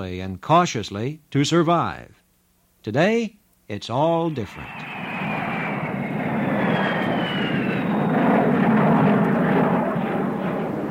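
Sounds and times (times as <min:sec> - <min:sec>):
speech: 0:00.0 - 0:02.2, 0:02.8 - 0:05.0
faint high whine gliding downward: 0:04.2 - 0:10.8
jet airliner engine roar: 0:04.2 - 0:10.8.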